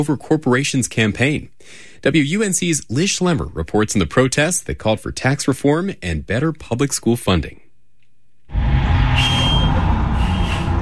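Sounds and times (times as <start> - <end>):
speech: 0.0 - 7.6
bus engine rumbling: 8.6 - 10.8
thin bus brake squeal: 9.0 - 10.8.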